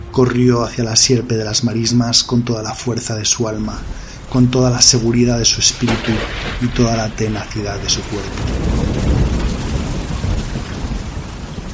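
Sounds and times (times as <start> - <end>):
deep rumbling undertone: 0.0 - 11.3
heavy rain pattering on the ground: 0.0 - 11.7
speech: 0.2 - 8.8.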